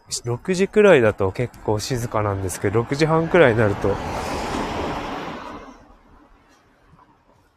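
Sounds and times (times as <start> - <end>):
speech: 0.1 - 4.3
car passing on a road: 0.6 - 7.5
loud broad whooshing rush of car tires on a road: 1.5 - 6.8.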